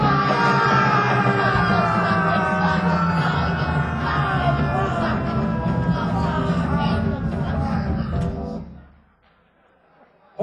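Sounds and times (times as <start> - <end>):
man screaming while falling: 0.0 - 7.6
laughter: 0.0 - 10.3.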